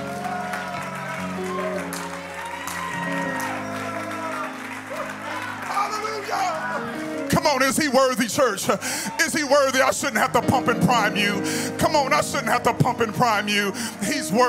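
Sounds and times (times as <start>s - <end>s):
church audience clapping: 0.0s - 9.9s
sustained organ-like music: 0.0s - 14.4s
speech: 7.6s - 14.4s.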